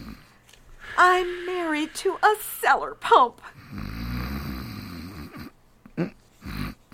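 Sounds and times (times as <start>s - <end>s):
speech: 1.0s - 3.8s, 6.0s - 6.2s
man snoring loudly: 3.6s - 5.5s, 6.4s - 6.8s.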